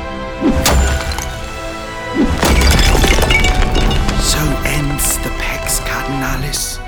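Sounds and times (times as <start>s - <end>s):
heavy smashing blows on a stone wall: 0.4s - 6.5s
debris crumbling and shattering: 0.4s - 6.7s.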